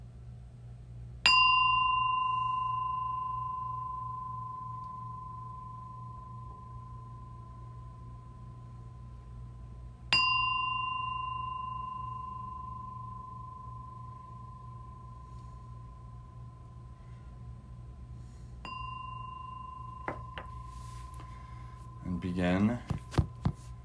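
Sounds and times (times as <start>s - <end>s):
quiet low hum: 0.0s - 23.8s
meditation bell ringing: 1.2s - 9.1s, 10.1s - 17.0s, 18.6s - 22.5s
speech: 22.2s - 23.0s.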